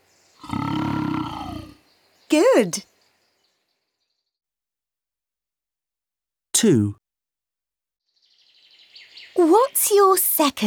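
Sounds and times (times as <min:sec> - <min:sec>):
deep rumbling lion roar: 0:00.4 - 0:01.8
speech: 0:02.3 - 0:02.9, 0:06.6 - 0:07.0, 0:09.4 - 0:10.6.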